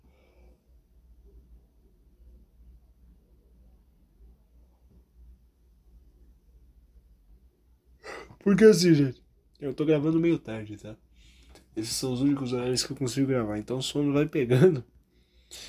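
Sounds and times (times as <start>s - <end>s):
person yawning: 8.1s - 8.4s
speech: 8.4s - 11.0s, 11.8s - 14.9s.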